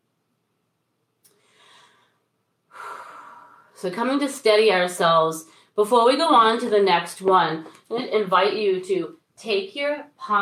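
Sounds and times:
person exhaling in a guided breathing exercise: 0:01.3 - 0:03.8
person inhaling sharply in a guided breathing exercise: 0:01.3 - 0:03.8
speech: 0:03.8 - 0:10.4.

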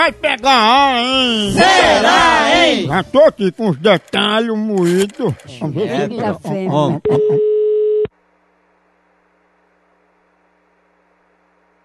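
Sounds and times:
speech: 0:00.0 - 0:07.5
laughter: 0:04.8 - 0:07.5
telephone ringing tone while placing a call: 0:07.1 - 0:08.1.

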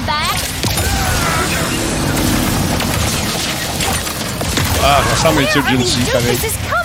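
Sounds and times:
video game frag grenade explosions: 0:00.2 - 0:06.7
constant low rumble: 0:00.9 - 0:04.8
speech: 0:04.9 - 0:06.7.

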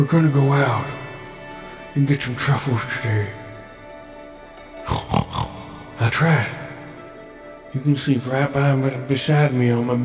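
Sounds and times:
speech: 0:00.0 - 0:01.0, 0:02.0 - 0:03.4, 0:06.1 - 0:06.6, 0:07.7 - 0:10.0
pig oinking and grunting: 0:04.9 - 0:06.0.

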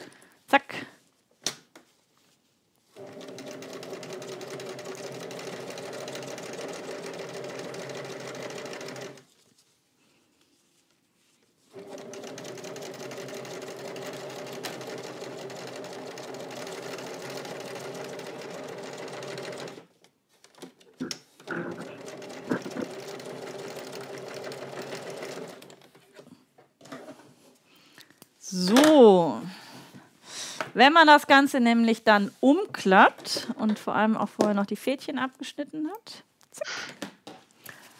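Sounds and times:
sewing machine stitching fabric: 0:03.0 - 0:09.3, 0:11.7 - 0:20.6, 0:21.4 - 0:26.2
speech: 0:28.6 - 0:29.2, 0:30.8 - 0:36.3.

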